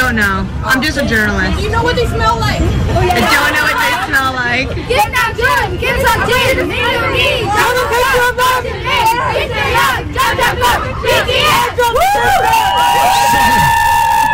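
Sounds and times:
speech: 0:00.1 - 0:13.8
large crowd cheering and screaming outside the White House: 0:11.5 - 0:14.3.

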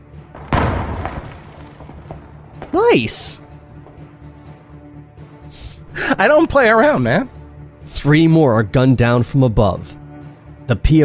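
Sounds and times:
mortar shell explosion: 0:00.3 - 0:03.2
speech: 0:02.8 - 0:03.5, 0:06.2 - 0:07.4, 0:08.0 - 0:10.0, 0:10.7 - 0:11.0.

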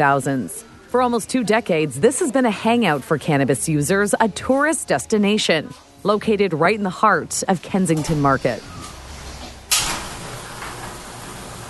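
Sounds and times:
speech: 0:00.0 - 0:08.8
garage door rolling upward with grinding, clattering rattle: 0:08.0 - 0:11.6.

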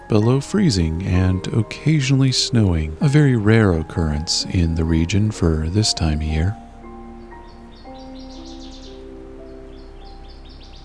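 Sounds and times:
northern waterthrush singing: 0:00.0 - 0:10.8
steady low drone with faint sustained tones: 0:00.0 - 0:10.8
speech: 0:00.1 - 0:06.6.

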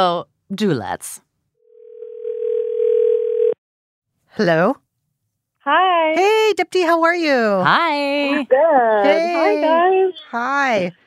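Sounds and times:
speech: 0:00.0 - 0:01.2, 0:04.4 - 0:04.8, 0:05.6 - 0:11.0
outgoing phone call ringback tone: 0:01.6 - 0:03.6.

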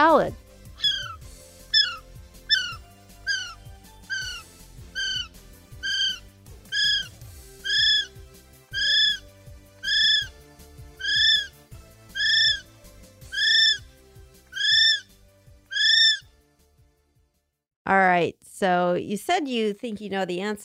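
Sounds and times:
speech: 0:00.2 - 0:00.4, 0:18.2 - 0:20.6
kiwi giving shrill whistled cries: 0:00.8 - 0:10.4, 0:11.0 - 0:13.8, 0:14.5 - 0:15.1, 0:15.7 - 0:16.2.

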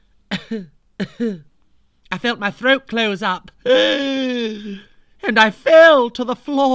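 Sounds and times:
harsh raspy coughing: 0:00.3 - 0:01.5
speech: 0:00.5 - 0:01.5, 0:02.1 - 0:06.7.

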